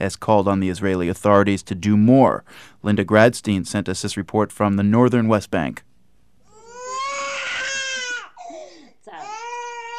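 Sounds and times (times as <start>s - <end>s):
speech: 0.0s - 5.9s
toddler wailing in a kitchen in a village in the northern West Bank: 6.5s - 9.9s.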